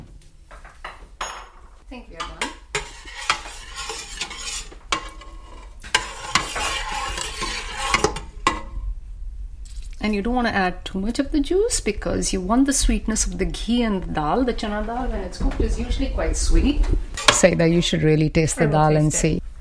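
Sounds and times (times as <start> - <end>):
metal spoon clanking and scraping in a pot of chana dal: 2.2 - 8.8
speech: 10.0 - 19.4.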